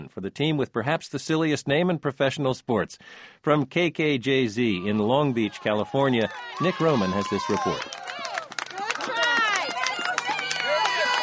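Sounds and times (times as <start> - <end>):
speech: 0.1 - 8.1
crowd of fans cheering at hockey playoff game in Southern California: 4.7 - 11.2.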